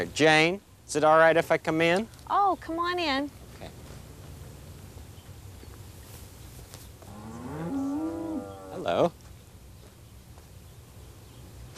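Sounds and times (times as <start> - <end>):
speech: 0.0 - 3.4, 8.8 - 9.2
cow mooing on a dairy farm: 7.1 - 9.0.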